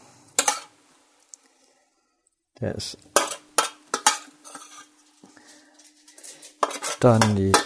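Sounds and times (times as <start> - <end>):
faint sizzle of paprika in a warm pan: 0.0 - 7.6
speech: 2.6 - 3.1, 7.0 - 7.6
utensil clattering against a warm pan while stirring paprika: 3.2 - 4.8, 6.6 - 7.6.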